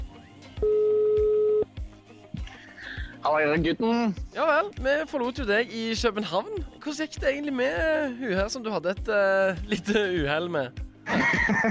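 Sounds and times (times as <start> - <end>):
telephone ringing tone: 0.6 - 1.7
speech: 3.2 - 11.6
laughter: 11.1 - 11.6.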